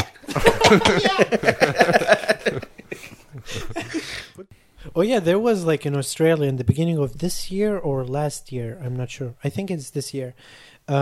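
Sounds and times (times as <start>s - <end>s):
person chuckling: 0.0s - 4.4s
speech: 0.4s - 2.7s, 5.0s - 11.0s
person imitating coughing: 0.5s - 1.3s.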